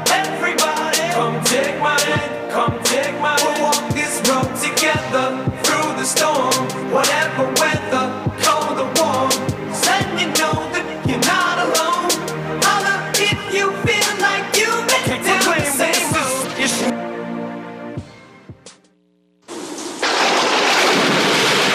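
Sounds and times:
loud music: 0.0s - 18.9s
heavy rain in a thunderstorm: 20.0s - 21.7s
rumbling thunder: 20.0s - 21.7s.

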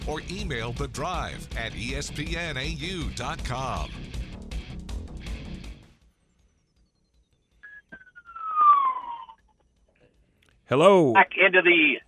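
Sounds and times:
speech: 0.1s - 4.2s, 10.7s - 12.0s
ambulance siren passing: 7.7s - 9.4s.

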